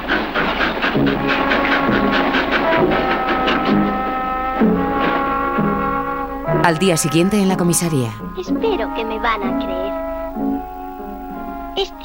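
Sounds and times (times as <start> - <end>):
train pulling away chuffing: 0.0 - 11.8
speech: 6.6 - 10.0.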